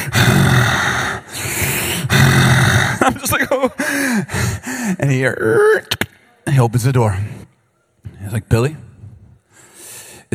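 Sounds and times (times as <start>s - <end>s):
voice imitating heavy breathing outside a bedroom door: 0.0s - 5.0s
speech: 3.1s - 7.5s, 8.1s - 8.9s.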